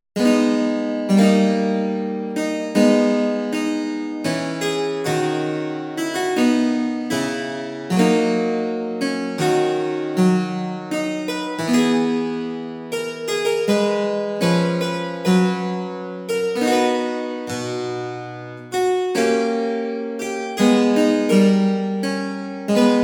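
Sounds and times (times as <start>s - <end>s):
Dutch harpsichord with two eight-foot registers: 0.2s - 23.0s.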